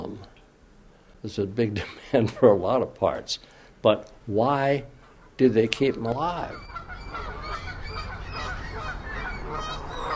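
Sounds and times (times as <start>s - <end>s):
steady outdoor noise: 0.0s - 10.1s
speech: 1.2s - 7.2s
flock of geese honking on Belle Isle near downtown Detroit: 6.2s - 10.1s.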